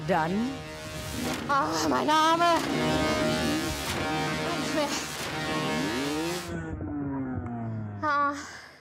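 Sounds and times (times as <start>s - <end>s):
motocross motorcycle engine revving and whining: 0.0s - 7.6s
speech: 0.1s - 3.1s, 4.8s - 5.1s, 8.1s - 8.6s
sudden sharp burst of noise: 0.3s - 6.6s.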